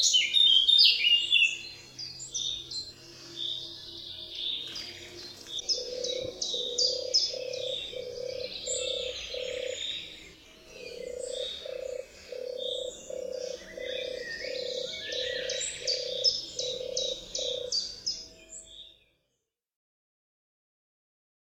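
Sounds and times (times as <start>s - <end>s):
songbirds chirping: 0.0s - 19.4s
European turtle dove purring: 5.6s - 9.9s, 10.8s - 17.8s.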